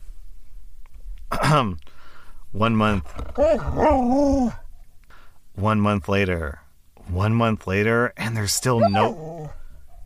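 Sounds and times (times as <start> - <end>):
speech: 1.5 - 4.6, 5.6 - 9.3
dog growling and grumbling: 3.3 - 4.6, 8.7 - 9.7.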